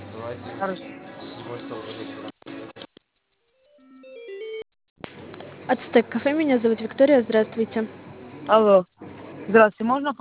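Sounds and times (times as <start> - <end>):
speech: 0.3 - 2.3, 5.7 - 10.1
melodic telephone tone while a call to a café is transferred: 3.7 - 4.6.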